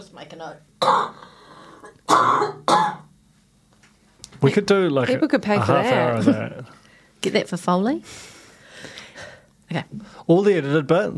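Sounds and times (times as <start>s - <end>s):
speech: 0.0s - 2.9s, 4.4s - 8.3s, 9.2s - 11.1s
harsh gnarly throaty coughing: 0.8s - 3.1s.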